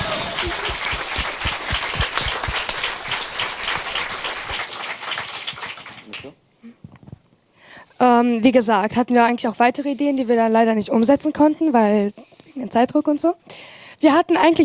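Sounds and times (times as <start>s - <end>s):
crowd applauding for a project group: 0.0s - 6.4s
speech: 8.0s - 14.6s.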